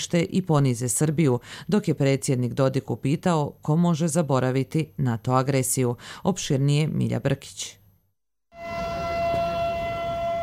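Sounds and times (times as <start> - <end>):
speech: 0.0 - 7.8
air-raid alarm siren wailing at a commemoration: 8.5 - 10.4.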